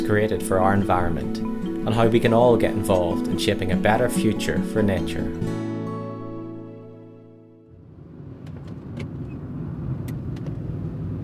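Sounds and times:
speech: 0.1 - 5.7
car driving along a road in Northern Ireland: 7.7 - 11.2.

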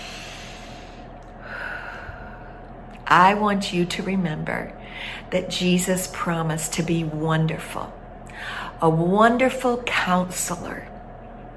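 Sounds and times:
deep breath taken during a Christmas sermon: 0.0 - 2.7
speech: 3.1 - 10.9.

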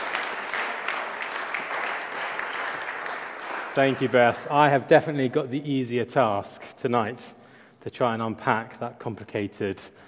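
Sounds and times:
crowd applauding after a psalm reading: 0.0 - 4.8
speech: 3.8 - 10.0.

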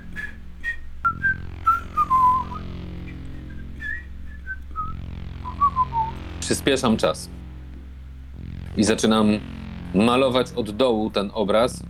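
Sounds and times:
person whistling a wandering melody: 0.0 - 6.2
steady low hum: 0.0 - 11.8
speech: 6.5 - 7.4, 8.8 - 11.8.

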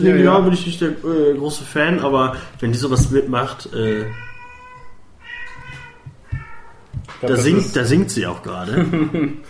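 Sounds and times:
speech: 0.0 - 4.3, 7.2 - 9.4
cat meowing: 3.8 - 7.1
laughter: 8.6 - 9.4.

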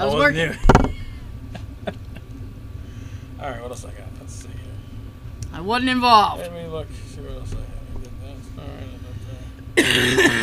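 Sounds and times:
speech: 0.0 - 0.7, 3.4 - 4.7, 5.5 - 7.7, 9.8 - 10.4
low hum: 0.0 - 10.4
harsh raspy cough: 9.8 - 10.4.

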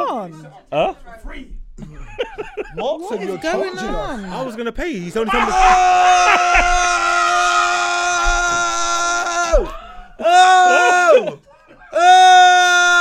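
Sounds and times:
speech: 0.2 - 6.9
laughter: 1.8 - 4.1, 5.2 - 12.6
person screaming loudly and high-pitched: 5.3 - 11.4.

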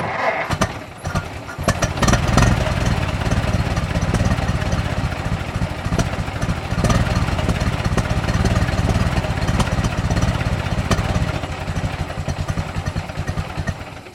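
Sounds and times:
internal combustion engine roaring: 0.0 - 14.1
rattling clatter: 0.0 - 14.1.

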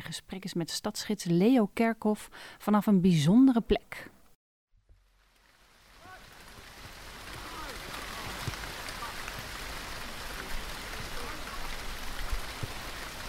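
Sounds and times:
speech: 0.1 - 4.1
steady rain falling on an outdoor athletics track: 4.9 - 13.2.

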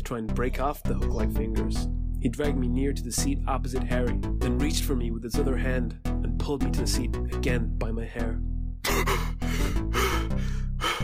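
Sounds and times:
speech: 0.1 - 9.3
person gasping for air: 8.8 - 11.0.

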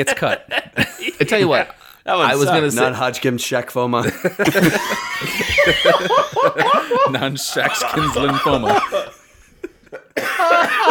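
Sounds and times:
laughter: 0.0 - 2.8, 4.0 - 10.8
speech: 0.0 - 9.1
person coughing: 6.6 - 9.2, 10.2 - 10.8.

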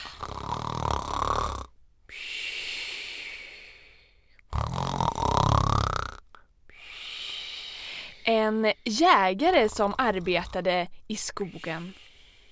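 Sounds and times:
loud rasping snoring: 0.0 - 1.8, 4.5 - 6.4, 9.5 - 10.7
speech: 8.5 - 12.0.

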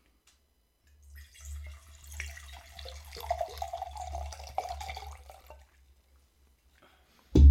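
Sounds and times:
red wine being poured into glass: 1.0 - 5.9.

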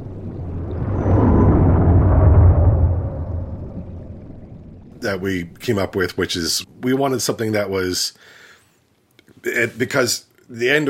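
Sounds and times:
meteor sound effect, deep broad rumbling roar: 0.0 - 5.6
speech: 5.1 - 8.4, 9.4 - 10.8.

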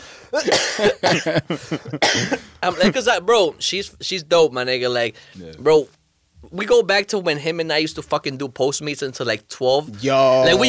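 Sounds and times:
harsh voiced coughing: 0.3 - 3.0
speech: 0.3 - 10.6.

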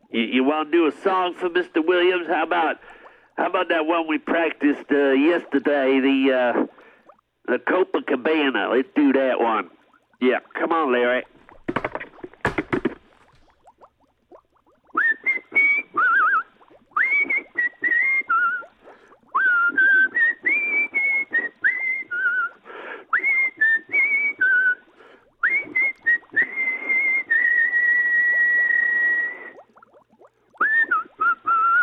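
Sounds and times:
speech: 0.1 - 6.7, 7.4 - 11.3
sharp knocks: 11.6 - 13.1
person whistling a bouncy melody: 14.9 - 18.7, 19.4 - 24.8, 25.4 - 29.6, 30.6 - 31.8.

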